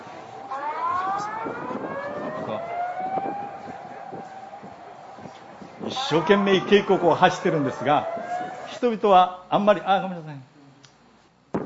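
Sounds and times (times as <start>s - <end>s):
tsunami warning siren wailing: 0.0s - 9.0s
rumbling noisy background: 0.0s - 10.0s
speech: 1.4s - 1.9s, 6.1s - 8.2s, 8.8s - 10.5s.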